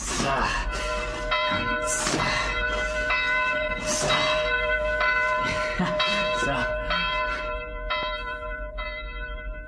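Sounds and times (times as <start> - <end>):
church bells ringing: 0.1 - 9.6
speech: 0.2 - 0.9, 1.5 - 2.5.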